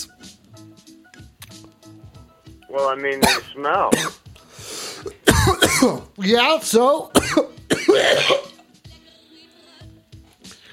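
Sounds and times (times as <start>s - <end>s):
speech: 2.7s - 4.2s, 5.0s - 8.4s
man coughing with phlegmy rattle: 3.2s - 4.2s, 5.0s - 6.1s, 7.2s - 8.6s.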